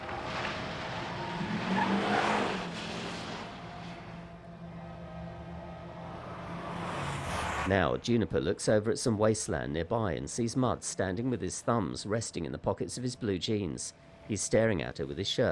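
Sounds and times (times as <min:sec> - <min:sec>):
SUV engine revving and pulling away: 0:00.0 - 0:07.7
SUV tire squeal: 0:00.0 - 0:07.7
speech: 0:07.7 - 0:15.5.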